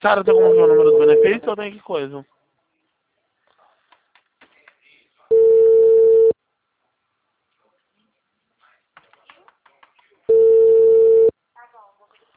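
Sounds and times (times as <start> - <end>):
speech: 0.0 - 2.4
telephone line busy tone beeps after a dropped call: 0.3 - 1.4, 5.3 - 6.4, 10.3 - 11.3.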